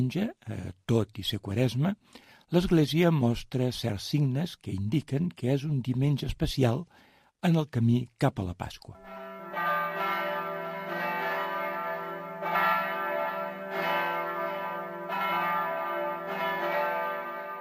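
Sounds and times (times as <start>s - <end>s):
speech: 0.0s - 9.2s
church tower bells ringing: 9.0s - 17.5s.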